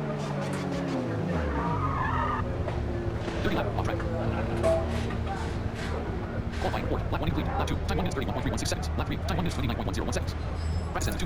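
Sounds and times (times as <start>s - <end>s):
racing car tire squeal in a video game: 0.0s - 6.6s, 10.4s - 11.0s
racing car engine slowing in a touring car racing video game: 0.0s - 11.2s
speech: 6.6s - 11.2s.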